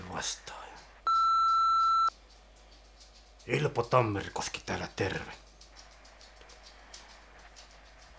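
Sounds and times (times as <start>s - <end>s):
speech: 0.2s - 0.6s, 3.5s - 5.4s
electronic answering machine beep: 1.1s - 2.1s.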